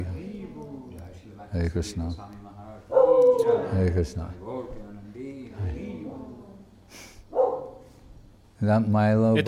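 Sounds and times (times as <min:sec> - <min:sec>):
speech: 0:01.5 - 0:02.4, 0:03.5 - 0:04.5, 0:08.6 - 0:09.4
dog barking: 0:02.9 - 0:03.8, 0:07.3 - 0:07.9.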